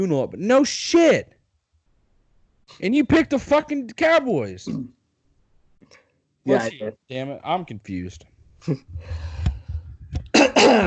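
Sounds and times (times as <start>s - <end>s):
speech: 0.0s - 1.4s, 2.7s - 5.0s, 5.8s - 9.4s, 10.6s - 10.8s
man clearing his throat: 4.7s - 4.9s, 10.3s - 10.8s
quiet murmuring: 6.5s - 7.0s.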